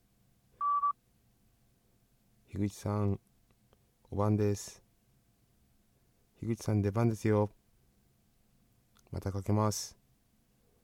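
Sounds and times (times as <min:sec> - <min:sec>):
quiet telephone line hiss: 0:00.0 - 0:10.8
answering machine beep: 0:00.6 - 0:00.9
speech: 0:02.5 - 0:03.3, 0:04.1 - 0:04.8, 0:06.4 - 0:07.6, 0:09.1 - 0:10.0.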